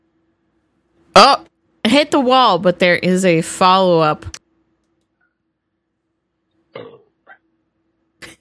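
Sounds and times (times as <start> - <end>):
speech: 1.2 - 4.3
short raspy burps: 6.7 - 7.4.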